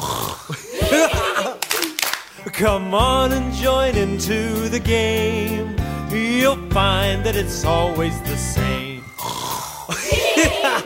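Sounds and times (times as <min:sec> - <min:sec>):
voices imitating snoring in a children's singing game: 0:00.0 - 0:01.4, 0:09.2 - 0:10.6
voices giggling in a children's singing game: 0:00.5 - 0:02.0, 0:09.9 - 0:10.8
sharp hand claps: 0:01.1 - 0:02.4
speech: 0:02.5 - 0:08.9.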